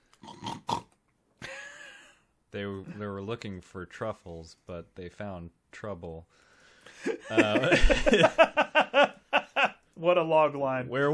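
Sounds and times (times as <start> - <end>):
person imitating pig snorting and grunting: 0.2 - 1.0
speech: 2.5 - 9.1, 10.0 - 11.1
laughter: 7.0 - 9.8.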